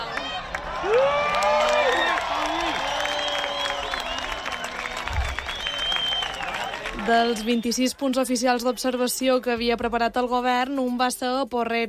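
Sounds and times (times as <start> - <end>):
crowd applauding during eclipse: 0.0 - 8.2
speech: 7.1 - 11.8.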